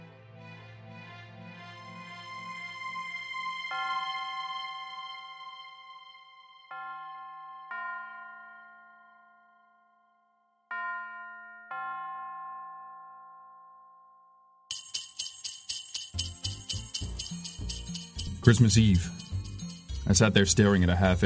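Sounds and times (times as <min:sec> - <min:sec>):
Christmas bell melody: 0:14.7 - 0:21.2
bright rhythmic jingling: 0:14.7 - 0:21.2
speech: 0:18.5 - 0:19.2, 0:20.1 - 0:21.2.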